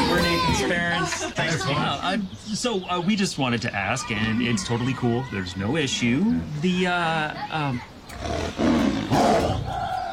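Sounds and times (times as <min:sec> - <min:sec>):
speech: 0:00.5 - 0:09.8
tiger roaring: 0:08.1 - 0:10.1.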